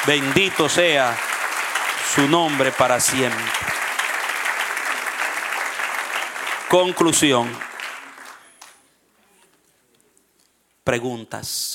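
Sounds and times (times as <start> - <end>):
speech: 0.0 - 1.3, 2.1 - 3.8, 6.7 - 7.7, 10.9 - 11.7
congregation applauding during a church sermon: 0.0 - 8.9.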